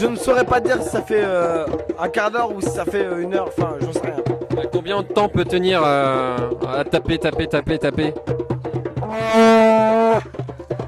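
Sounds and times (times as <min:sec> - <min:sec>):
speech: 0:00.0 - 0:08.4
low rhythmic thumping beat: 0:00.0 - 0:10.8
loud brassy foghorn-like blast: 0:09.0 - 0:10.2.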